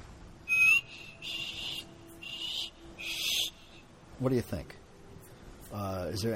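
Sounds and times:
person trying to whistle with breathy blows: 0.5 - 3.8
speech: 4.2 - 4.8, 5.7 - 6.3.

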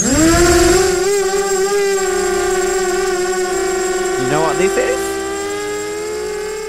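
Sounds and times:
drone buzzing overhead: 0.0 - 6.6.

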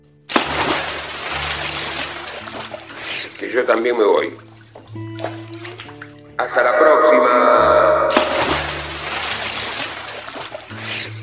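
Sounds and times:
object splashing into water: 0.3 - 6.2, 8.1 - 11.2
speech: 3.4 - 5.4, 6.4 - 8.2.

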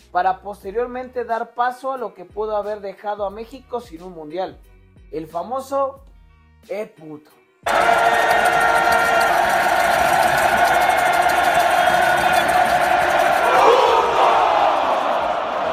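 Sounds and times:
speech: 0.1 - 9.7
huge football stadium crowd shouting in unison: 7.7 - 15.7.

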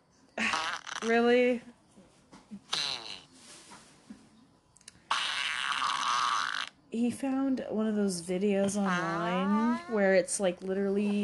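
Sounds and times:
recorded farts from an online video: 0.4 - 1.4, 2.7 - 3.5, 5.1 - 6.8
speech: 1.0 - 1.8, 7.0 - 11.2.

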